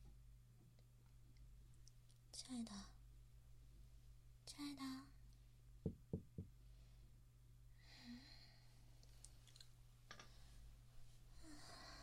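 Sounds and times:
low steady hum: 0:00.0 - 0:12.0
speech: 0:02.4 - 0:03.0, 0:04.6 - 0:05.2, 0:05.8 - 0:06.5
knocking on a door: 0:05.8 - 0:06.6.

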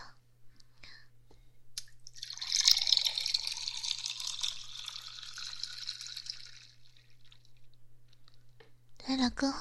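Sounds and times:
water poured into a glass: 0:02.1 - 0:07.6.

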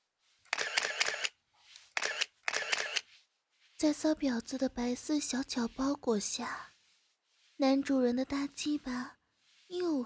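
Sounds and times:
camera shutter clicks as photos are taken: 0:00.5 - 0:03.0
speech: 0:03.8 - 0:06.7, 0:07.6 - 0:10.0.

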